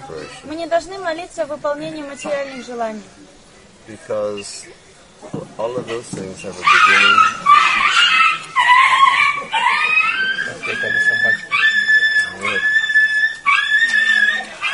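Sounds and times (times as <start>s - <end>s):
speech: 0.3s - 3.3s, 3.9s - 7.9s
puppy squealing: 5.9s - 14.7s.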